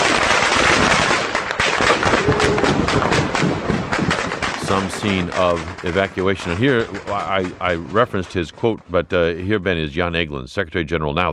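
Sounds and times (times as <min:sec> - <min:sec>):
rapid gunfire bursts during civilian evacuation: 0:00.0 - 0:08.1
rough roar: 0:00.0 - 0:10.1
laughter: 0:04.6 - 0:11.3
speech: 0:04.7 - 0:11.3.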